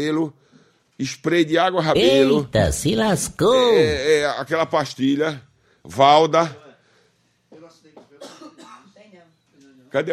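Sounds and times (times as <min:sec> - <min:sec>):
speech: 0:00.0 - 0:06.6, 0:09.9 - 0:10.1
sick person coughing quietly: 0:08.2 - 0:09.0.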